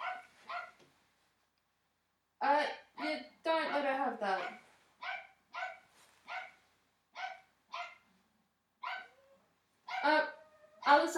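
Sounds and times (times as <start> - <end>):
dog barking: 0.0 - 0.8, 3.6 - 6.6, 7.2 - 8.1, 8.8 - 9.3, 9.9 - 11.0.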